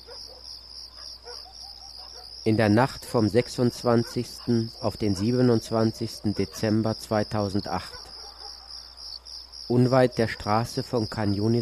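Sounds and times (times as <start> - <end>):
cicadas shrilling at night near the road from Khan Yunis to Rafah: 0.0 - 11.6
speech: 2.4 - 8.0, 9.7 - 11.6.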